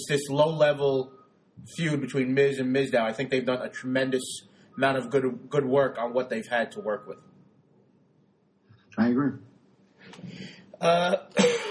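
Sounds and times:
speech: 0.0s - 7.3s, 9.0s - 9.5s, 10.1s - 11.7s
person clearing throat roughly: 10.9s - 11.7s
person coughing harshly: 10.9s - 11.7s.

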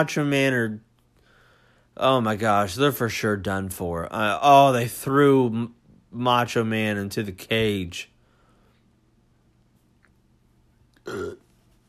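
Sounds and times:
speech: 0.0s - 0.9s, 2.0s - 8.1s, 11.1s - 11.4s
person burping: 11.0s - 11.5s.

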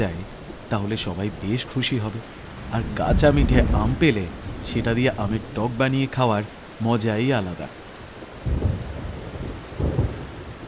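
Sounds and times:
speech: 0.0s - 7.8s
heavy rain pouring in a sudden storm: 0.0s - 10.6s
deep rolling rumbles of thunder: 2.3s - 6.8s, 8.4s - 10.6s.

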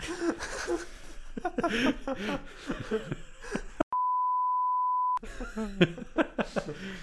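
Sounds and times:
laughter: 0.0s - 3.9s, 5.2s - 7.0s
high-pitched censor beep: 3.9s - 5.2s.

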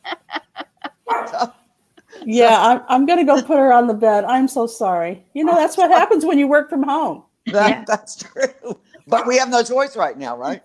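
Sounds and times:
laughter: 0.0s - 2.4s, 7.5s - 9.6s
dog barking: 1.1s - 1.5s
speech: 1.4s - 1.6s, 2.3s - 10.6s.

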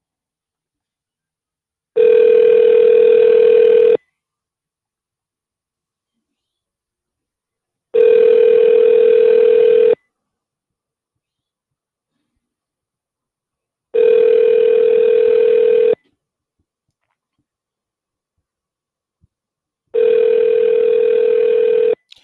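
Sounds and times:
phone's outgoing ringback tone from a call being placed: 2.0s - 4.0s, 8.0s - 10.0s, 14.0s - 16.0s, 20.0s - 22.0s.

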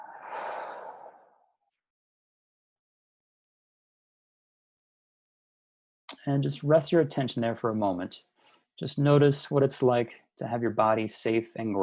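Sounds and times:
deep breath out in a relaxation exercise: 0.0s - 1.4s, 8.4s - 8.7s
speech: 6.2s - 11.8s.

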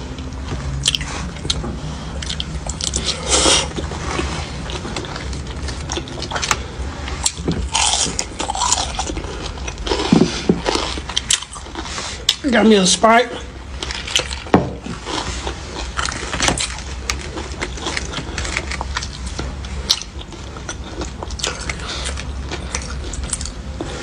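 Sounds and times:
loud crunching and chewing of hard-fried fish: 0.1s - 12.6s, 13.6s - 24.0s
speech: 12.6s - 13.5s.

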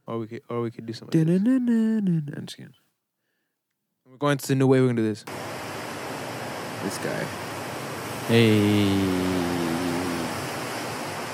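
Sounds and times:
speech: 0.1s - 2.8s, 4.2s - 5.5s, 6.8s - 7.4s, 8.3s - 9.7s
steady electrical buzz with faint static hiss: 7.4s - 10.8s.

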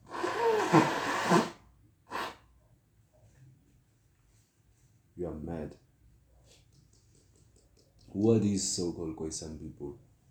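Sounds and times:
person blowing their nose: 0.0s - 2.4s
speech: 0.7s - 0.9s, 8.2s - 10.1s.

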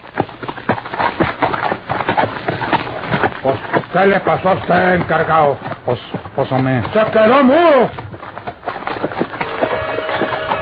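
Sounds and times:
several horses setting off hoofbeats: 0.0s - 10.6s
speech: 3.4s - 8.0s.

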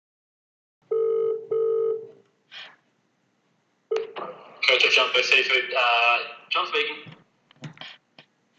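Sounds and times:
electronic telephone ring tones of a phone call being placed: 0.9s - 2.2s
speech: 4.7s - 7.2s.

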